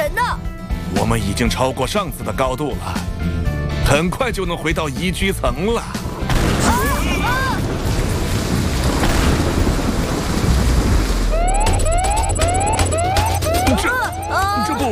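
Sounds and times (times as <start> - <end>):
speech: 0.1 - 3.3, 3.9 - 6.0
crackling roar of thunder from a powerful lightning strike: 6.0 - 14.4
rapid electronic alarm beeps and rising warning tones: 11.3 - 14.9.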